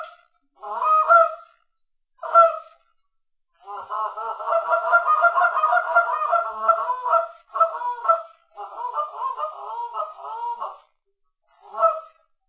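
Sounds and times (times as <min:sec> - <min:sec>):
Canada goose honking: 0:00.6 - 0:01.5, 0:02.2 - 0:02.7, 0:03.6 - 0:10.8, 0:11.6 - 0:12.2.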